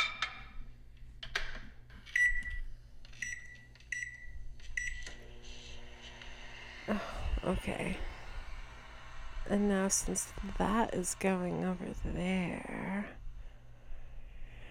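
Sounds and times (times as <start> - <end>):
microwave oven running with a low steady hum: 2.1 - 13.9
speech: 6.9 - 8.1, 9.5 - 13.2.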